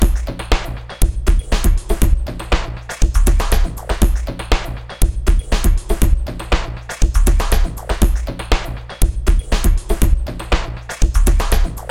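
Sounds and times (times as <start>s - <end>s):
drum loop highs: 0.0s - 11.8s.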